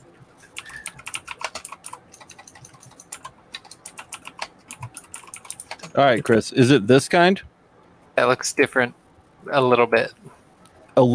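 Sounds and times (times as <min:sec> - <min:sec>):
rapid typing on a computer keyboard: 0:00.5 - 0:06.0
speech: 0:06.0 - 0:07.5, 0:08.2 - 0:10.3, 0:11.0 - 0:11.1.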